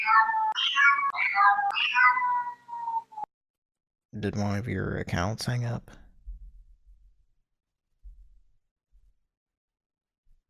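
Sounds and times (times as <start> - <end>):
speech: 0.0 - 2.6, 4.2 - 6.0
cat meowing: 0.0 - 3.3.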